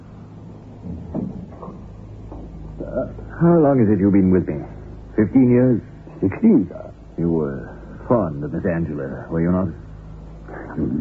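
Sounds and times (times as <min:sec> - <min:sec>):
faint room hum: 0:00.0 - 0:10.9
wooden door being pushed shut: 0:00.8 - 0:02.6
speech: 0:02.9 - 0:09.8, 0:10.8 - 0:10.9.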